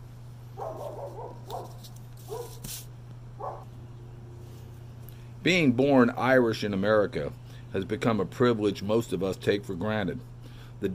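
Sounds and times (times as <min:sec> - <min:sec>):
steady low electrical hum: 0:00.0 - 0:10.9
dog barking outdoors in a backyard: 0:00.6 - 0:02.6, 0:03.4 - 0:03.7
speech: 0:05.4 - 0:10.9.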